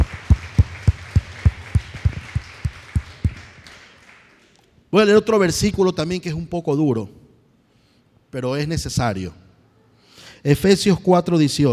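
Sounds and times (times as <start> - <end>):
audience clapping in a steady even rhythm: 0.0 - 4.8
speech: 4.9 - 7.2, 8.3 - 9.4, 10.4 - 11.7.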